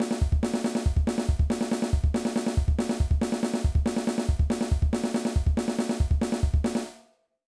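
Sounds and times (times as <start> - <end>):
punk drum fill: 0.0 - 6.8.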